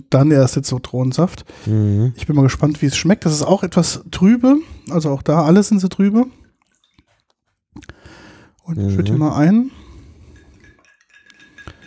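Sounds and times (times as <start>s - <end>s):
speech: 0.0s - 6.4s, 8.7s - 9.8s
ice cubes clinking in a glass: 10.3s - 11.8s.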